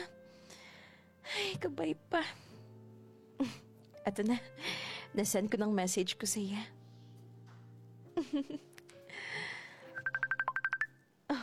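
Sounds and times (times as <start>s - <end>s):
speech: 1.5s - 2.5s, 3.4s - 6.8s, 8.3s - 8.7s
phone ringtone of short bright electronic beeps signalling an incoming call: 9.9s - 11.0s.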